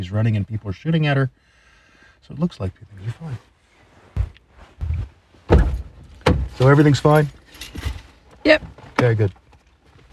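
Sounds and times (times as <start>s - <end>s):
speech: 0.0s - 1.5s, 2.2s - 3.5s, 6.6s - 9.4s
door thudding as someone struggles to close it: 5.5s - 6.6s.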